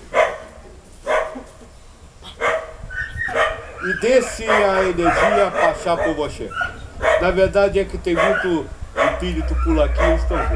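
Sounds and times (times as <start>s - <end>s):
dog barking: 0.1s - 0.5s, 1.1s - 1.4s, 2.4s - 2.7s, 3.3s - 7.4s, 8.2s - 10.5s
speech: 3.8s - 10.5s.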